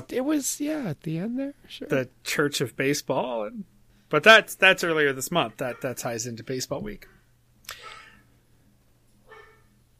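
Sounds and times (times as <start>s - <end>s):
speech: 0.0s - 7.1s
low steady hum: 0.0s - 9.9s
female dog barking indoors: 5.6s - 6.1s, 7.8s - 8.2s, 9.2s - 9.8s.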